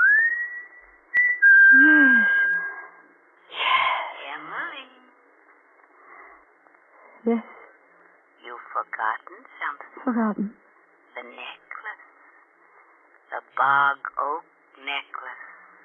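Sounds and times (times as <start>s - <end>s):
person whistling a signal: 0.0s - 2.9s
speech: 7.3s - 7.5s, 8.8s - 10.6s, 11.2s - 11.6s, 13.6s - 15.5s.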